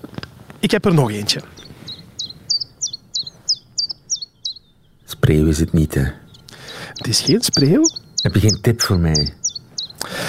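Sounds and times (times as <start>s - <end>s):
faint low rumble: 0.3s - 10.2s
speech: 0.6s - 1.6s, 5.3s - 6.2s, 7.0s - 9.4s
common chiffchaff singing: 1.5s - 10.1s.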